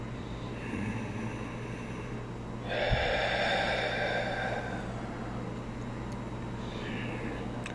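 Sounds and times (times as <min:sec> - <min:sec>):
slow deep abdominal breathing: 0:00.2 - 0:05.8, 0:06.5 - 0:07.7.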